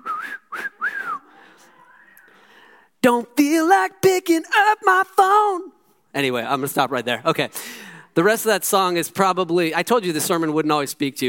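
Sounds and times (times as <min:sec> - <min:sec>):
person whistling a tune: 0:00.0 - 0:01.3
speech: 0:03.0 - 0:11.2.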